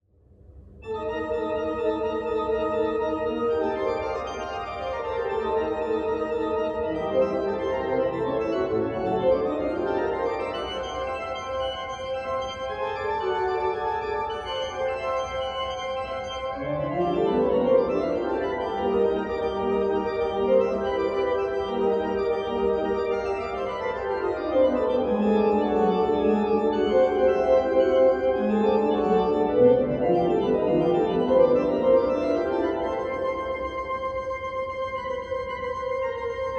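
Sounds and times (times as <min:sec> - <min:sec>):
small organ: 0:00.8 - 0:36.5.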